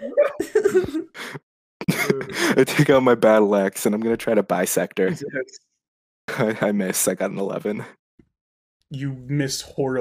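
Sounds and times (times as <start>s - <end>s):
laughter: 0.0s - 3.1s, 5.0s - 5.4s, 6.3s - 7.1s
person coughing: 0.2s - 1.2s
speech: 2.6s - 5.7s, 6.3s - 8.0s, 8.9s - 9.9s.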